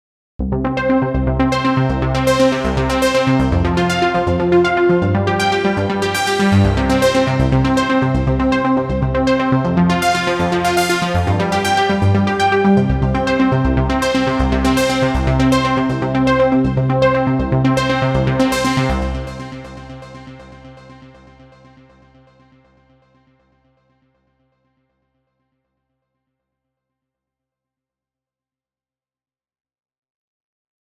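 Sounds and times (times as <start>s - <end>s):
synthesizer arpeggio: 0.4s - 21.2s.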